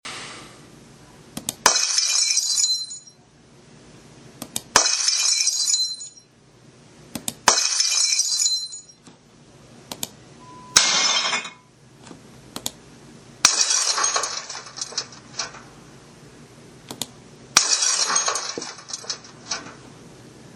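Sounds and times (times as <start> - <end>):
glass breaking: 1.6 - 3.0, 4.8 - 6.2, 7.5 - 8.9, 10.8 - 11.7, 13.4 - 15.6, 17.6 - 19.7.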